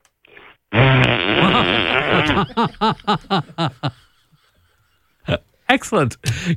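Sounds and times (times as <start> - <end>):
voice blowing a wet raspberry imitating a loud fart: 0.2 - 2.4
rhythmic chuckling bursts: 0.8 - 5.4
speech: 2.3 - 4.0, 5.8 - 6.5.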